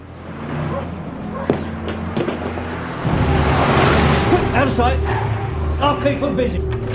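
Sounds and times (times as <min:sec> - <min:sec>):
Humber car engine rumbling as it approaches: 0:00.0 - 0:06.9
sharp knocks or thuds: 0:01.4 - 0:04.5
speech: 0:04.8 - 0:05.2, 0:05.8 - 0:06.7.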